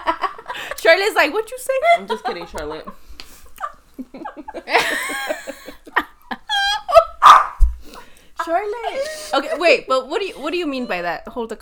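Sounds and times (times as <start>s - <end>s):
laughter: 0.0s - 7.4s, 8.4s - 11.2s
speech: 0.7s - 3.0s, 4.1s - 5.4s, 8.5s - 11.5s
dog whining and yipping: 7.2s - 7.7s.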